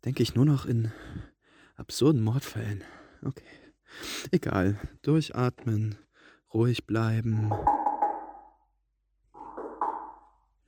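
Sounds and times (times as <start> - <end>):
speech: 0.0 - 7.8
hollow knocking on a door: 7.5 - 8.4, 9.4 - 10.2.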